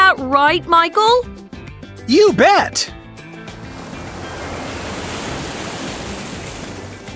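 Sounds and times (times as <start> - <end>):
speech: 0.3 - 1.3, 2.1 - 3.0
big ocean waves breaking on a beach: 3.3 - 7.1.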